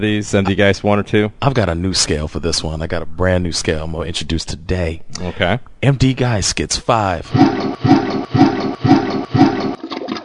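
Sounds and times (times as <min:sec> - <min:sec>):
speech: 0:00.0 - 0:08.4
loud toilet flush with rushing water and gurgling swirl: 0:07.3 - 0:10.2.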